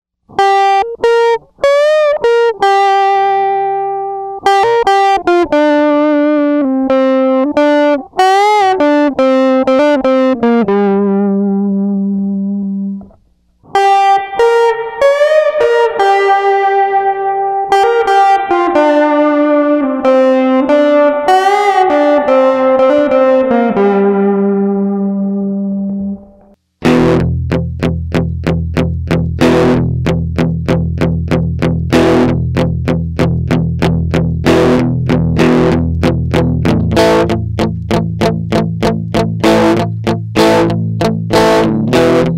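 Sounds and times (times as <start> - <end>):
electric guitar through silicon overdrive with reverb: 0.3 - 42.3.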